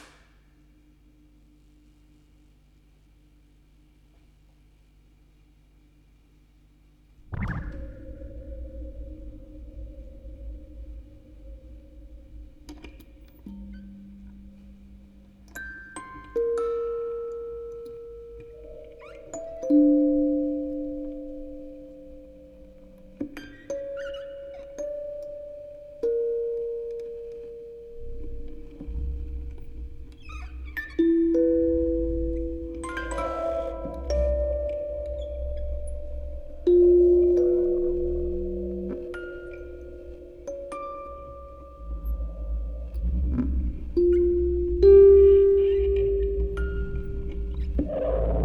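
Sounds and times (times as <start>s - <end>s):
field recording ambience: 0.0s - 48.4s
music box quartet: 12.7s - 22.8s, 23.4s - 47.9s.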